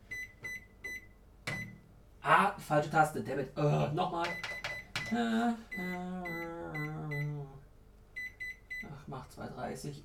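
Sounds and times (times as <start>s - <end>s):
microwave oven keypad beeps: 0.1s - 1.8s, 4.3s - 7.3s, 8.2s - 8.9s
speech: 2.2s - 4.5s, 5.1s - 6.5s, 9.1s - 10.0s
drawn-out human voice: 5.1s - 7.6s.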